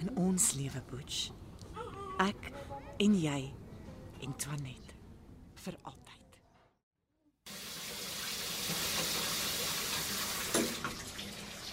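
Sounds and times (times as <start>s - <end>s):
speech: 0.1s - 1.5s, 2.2s - 3.6s, 4.2s - 4.8s, 5.6s - 6.1s
shower water running: 7.5s - 11.7s.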